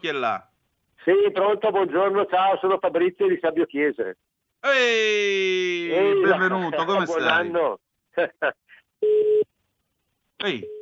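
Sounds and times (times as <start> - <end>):
speech: 0.0 - 9.4, 10.4 - 10.8
laughter: 8.2 - 8.7
mid-pitched telephone busy tone after a dropped call: 9.0 - 9.5.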